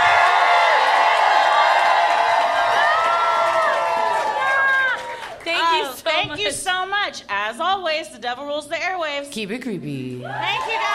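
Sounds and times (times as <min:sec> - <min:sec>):
live crowd yelling and whooping woo: 0:00.0 - 0:05.3, 0:10.3 - 0:10.9
speech: 0:06.5 - 0:10.9.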